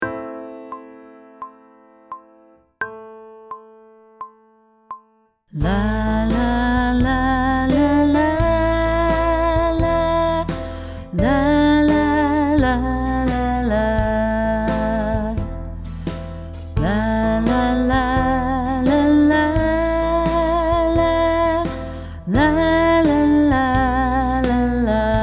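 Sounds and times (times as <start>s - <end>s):
person sight singing pop vocals: 5.6s - 15.6s, 16.8s - 25.2s.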